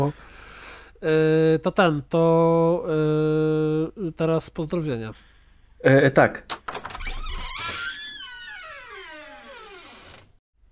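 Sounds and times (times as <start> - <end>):
speech: 0.0 - 0.3, 1.0 - 6.6
door opening with a clatter: 6.5 - 10.4.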